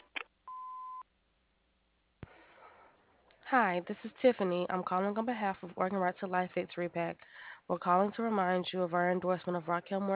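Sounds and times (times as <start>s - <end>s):
clicks: 0.0s - 0.4s
answering machine beep: 0.0s - 1.0s
speech: 3.5s - 10.1s.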